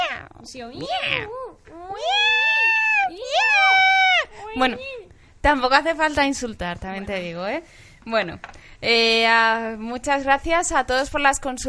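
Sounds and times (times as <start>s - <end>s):
person vocally imitating a cat meowing: 0.0s - 5.1s
speech: 0.4s - 2.3s, 4.5s - 11.6s.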